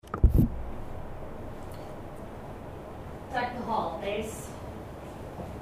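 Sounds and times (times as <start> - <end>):
deck bass sound: 0.0 - 3.7.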